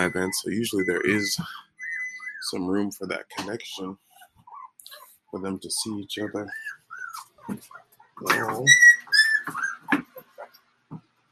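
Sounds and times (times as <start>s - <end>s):
speech: 0.0s - 1.7s, 2.4s - 4.1s, 5.3s - 6.8s, 7.5s - 8.9s
dog whining and whimpering: 0.0s - 2.6s, 4.1s - 5.2s, 6.2s - 10.5s.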